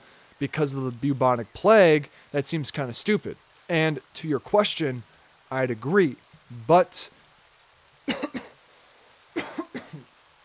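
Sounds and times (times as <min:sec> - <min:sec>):
speech: 0:00.4 - 0:07.2
person coughing: 0:08.1 - 0:08.6, 0:09.4 - 0:10.1.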